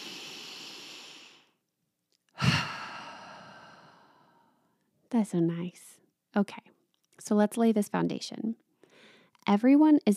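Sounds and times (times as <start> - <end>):
deep breath in and out: 0.0 - 1.6, 2.4 - 4.6, 8.8 - 9.3
speech: 5.1 - 8.6, 9.4 - 10.1.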